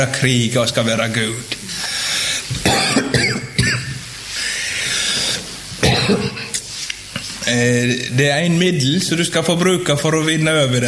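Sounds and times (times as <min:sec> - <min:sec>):
speech: 0:00.0 - 0:01.8, 0:07.5 - 0:10.8
steady breathy hiss: 0:00.1 - 0:09.2
person coughing: 0:02.6 - 0:04.0, 0:05.8 - 0:06.6.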